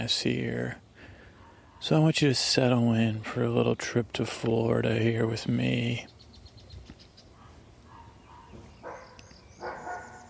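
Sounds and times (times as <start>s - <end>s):
speech: 0.0s - 0.8s, 1.8s - 6.1s
dog barking outdoors: 1.4s - 2.0s, 7.4s - 10.2s
light bird chirps: 5.9s - 10.2s.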